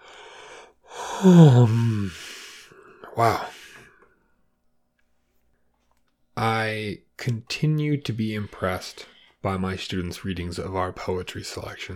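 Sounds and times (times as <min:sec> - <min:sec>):
person yawning with a downward-falling groan: 0:00.9 - 0:03.9
speech: 0:01.2 - 0:02.2, 0:03.2 - 0:03.5, 0:06.4 - 0:11.9.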